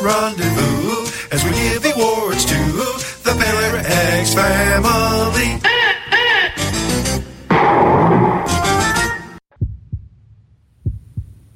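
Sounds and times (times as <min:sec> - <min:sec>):
music: 0:00.0 - 0:05.6, 0:06.5 - 0:07.5, 0:08.2 - 0:09.4
speech: 0:00.0 - 0:05.7
heartbeat sound effect: 0:09.5 - 0:10.2, 0:10.8 - 0:11.5.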